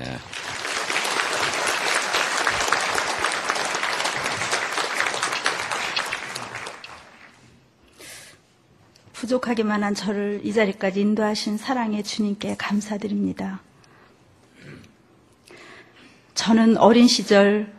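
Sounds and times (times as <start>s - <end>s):
speech: 0.0s - 0.5s, 9.3s - 13.7s, 16.5s - 17.7s
large church audience applauding: 0.0s - 7.6s.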